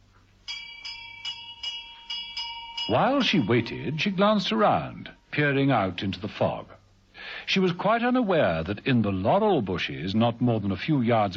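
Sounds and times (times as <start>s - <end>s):
doorbell with bright metallic chime: 0.5s - 5.3s
speech: 2.9s - 6.8s, 7.5s - 11.3s.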